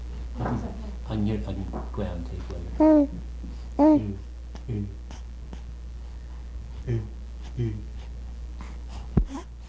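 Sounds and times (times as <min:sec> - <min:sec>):
faint moaning hum: 0:00.0 - 0:09.6
speech: 0:00.5 - 0:05.2, 0:06.8 - 0:07.9
soft nasal breathing: 0:04.6 - 0:09.6.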